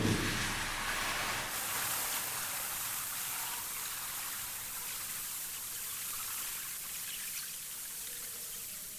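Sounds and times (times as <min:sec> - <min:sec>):
low splash of poured batter: 0:00.0 - 0:02.4
pancake-like batter poured onto the heating plate of a machine: 0:00.3 - 0:04.7.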